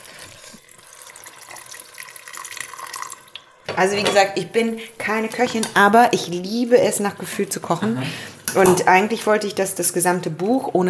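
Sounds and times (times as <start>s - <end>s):
water streaming from a tap into a cooking pot: 0.0s - 9.4s
speech: 3.8s - 10.8s.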